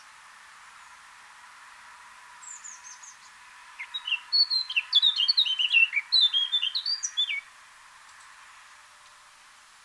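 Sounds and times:
Eurasian blackcap Sylvia atricapilla song: 2.4s - 7.4s.

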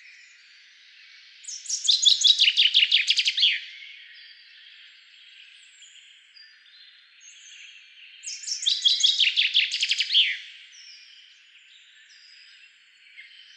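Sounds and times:
common chaffinch song Fringilla coelebs: 0.0s - 13.5s.

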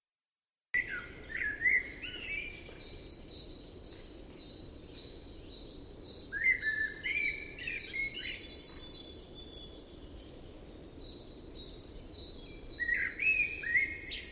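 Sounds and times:
Common blackbird Turdus merula singing fluting phrases with scratchy twitter: 0.8s - 14.2s
continuous hissing background: 0.8s - 14.2s.

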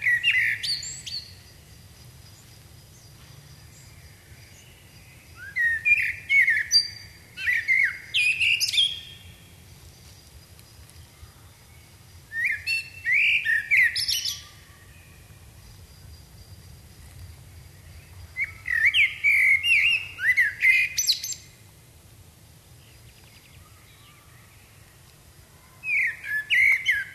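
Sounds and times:
common blackbird Turdus merula singing: 0.0s - 1.5s, 3.0s - 9.4s, 11.6s - 15.4s, 17.8s - 21.6s, 25.8s - 27.1s.

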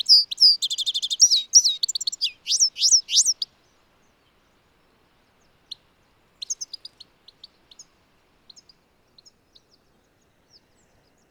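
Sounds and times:
European goldfinch Carduelis carduelis twittering: 0.0s - 3.4s
European goldfinch soft chirps: 0.0s - 4.5s, 5.3s - 11.2s.

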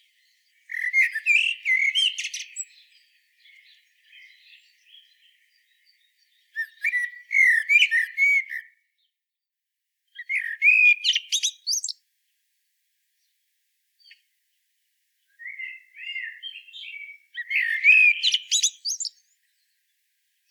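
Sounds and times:
common blackbird Turdus merula singing: 0.0s - 8.8s, 10.2s - 12.0s, 15.2s - 19.8s.

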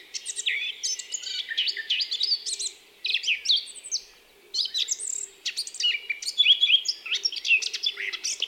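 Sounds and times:
Eurasian blackcap Sylvia atricapilla singing whistles, chips and scratchy twitters: 0.0s - 8.4s.

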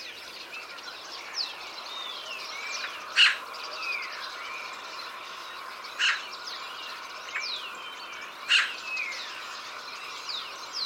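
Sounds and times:
small birds whistling and chirping: 0.0s - 10.8s
Eurasian magpie Pica pica grating calls: 3.1s - 3.4s, 6.0s - 6.2s, 8.5s - 8.8s.

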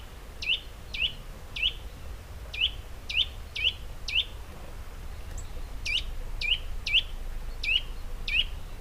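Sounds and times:
Eurasian nuthatch Sitta europaea calling: 0.4s - 1.9s, 2.5s - 4.4s, 5.3s - 8.8s
steady low background rumble: 0.8s - 8.8s.

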